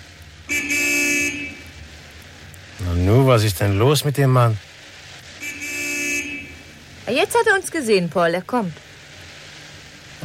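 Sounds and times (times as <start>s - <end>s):
car horn honking: 0.5s - 1.8s, 5.4s - 6.7s
speech: 3.1s - 4.7s, 7.1s - 8.9s.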